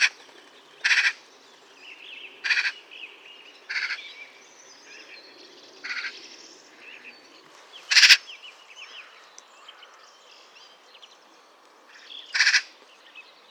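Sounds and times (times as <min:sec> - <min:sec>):
small birds twittering softly: 0:00.0 - 0:13.4
Eurasian magpie Pica pica rasping calls: 0:00.8 - 0:01.2, 0:02.4 - 0:02.8, 0:03.7 - 0:04.0, 0:07.9 - 0:08.2, 0:12.4 - 0:12.7.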